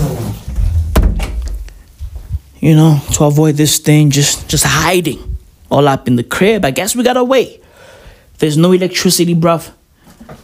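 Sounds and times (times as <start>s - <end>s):
door closing thud at home: 0.5s - 1.7s
door knocks and rattles as it settles: 0.6s - 1.6s
speech: 2.6s - 7.6s, 8.4s - 10.4s.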